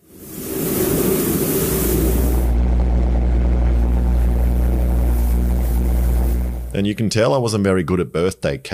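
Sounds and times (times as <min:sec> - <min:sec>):
pulse jet engine roaring: 0:00.0 - 0:06.8
speech: 0:06.8 - 0:08.7.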